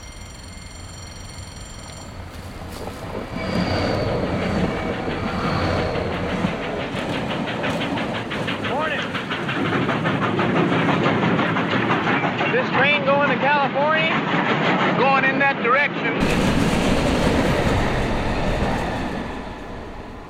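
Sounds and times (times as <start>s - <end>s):
high metallic squeals of freight train: 0.0s - 6.7s
rapid clattering freight train wheels: 0.0s - 12.6s
fast freight train roaring past: 0.0s - 20.2s.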